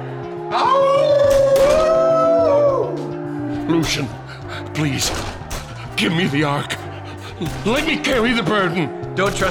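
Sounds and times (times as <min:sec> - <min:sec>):
wolf howling: 0:00.6 - 0:03.2
speech: 0:03.7 - 0:05.4, 0:06.0 - 0:06.9, 0:07.4 - 0:09.4.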